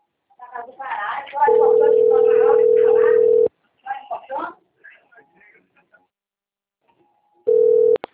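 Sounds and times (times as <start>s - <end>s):
people talking: 0.4s - 6.0s
steady single-pitch telephone tone while placing a call: 1.5s - 3.5s, 7.5s - 8.0s.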